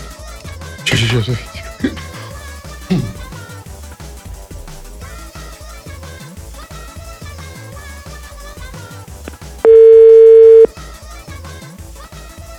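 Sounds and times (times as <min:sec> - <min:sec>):
music: 0:00.0 - 0:10.0, 0:10.7 - 0:12.5
speech: 0:00.9 - 0:02.0
telephone dial tone: 0:09.7 - 0:10.7.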